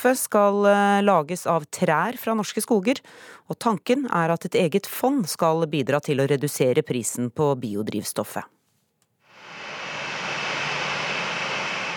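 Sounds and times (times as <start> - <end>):
speech: 0.0 - 8.6
jet airplane engines roaring while taxiing to gate after landing: 9.4 - 11.9.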